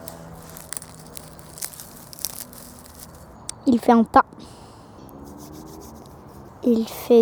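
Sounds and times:
branches being broken: 0.0s - 3.7s
speech: 3.6s - 4.6s, 6.6s - 7.2s.

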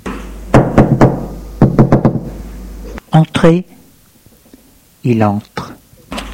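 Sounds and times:
knuckles knocking on a bedroom door: 0.6s - 2.3s
speech: 3.1s - 3.8s, 5.0s - 5.7s.

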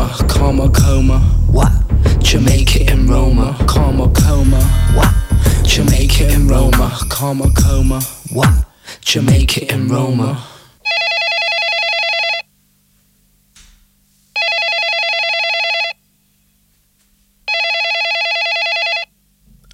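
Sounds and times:
speech: 0.5s - 4.1s, 4.7s - 10.5s
telephone ringing with trilling electronic bell: 10.8s - 12.5s, 14.4s - 16.0s, 17.5s - 19.2s.

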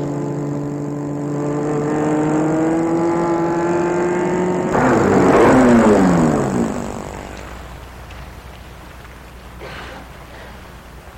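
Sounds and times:
car engine humming: 0.0s - 11.1s.

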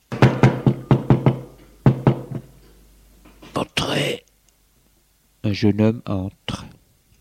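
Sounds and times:
firm knocks on a wooden door: 0.1s - 2.5s
speech: 5.5s - 6.6s.

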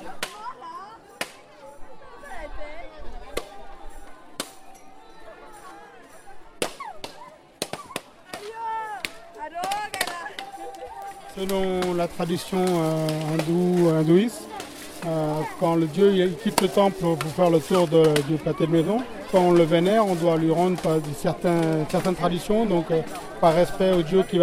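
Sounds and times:
crowd chatter and voices: 0.0s - 24.4s
coconuts smashing against a street surface: 6.6s - 22.4s
speech: 11.4s - 24.4s.

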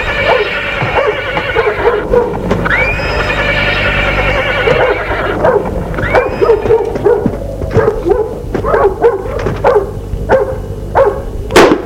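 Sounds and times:
horse whinnying at a château: 0.0s - 7.0s
low rumbling noise: 0.0s - 11.8s
dog barking in sharp yelps and woofs: 0.2s - 2.4s, 4.6s - 11.4s.

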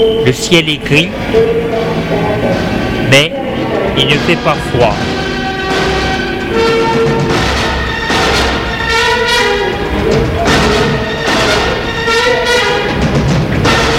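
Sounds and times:
speech: 0.0s - 1.9s, 3.1s - 3.4s, 4.0s - 5.1s
horn-like tones: 0.0s - 13.9s
train rumbling as it pulls out of a station: 0.0s - 13.9s.

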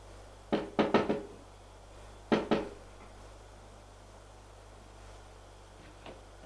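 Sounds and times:
knocking on a bedroom door: 0.5s - 1.3s, 2.3s - 2.8s.

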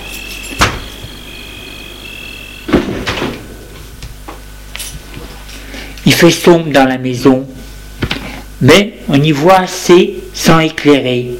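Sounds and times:
faint high insect-like chirp: 0.0s - 2.9s
door creaking as it swings: 0.0s - 3.5s
steady hum: 0.0s - 11.3s
speech: 6.1s - 7.5s, 8.6s - 11.3s.

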